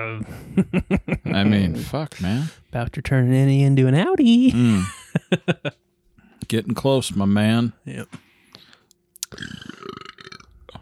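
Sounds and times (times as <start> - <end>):
speech: 0.0 - 5.8, 6.5 - 8.2
laughter: 0.2 - 2.0, 4.5 - 5.8
tongue-vibrating burp sound played by a smart speaker: 9.3 - 10.8.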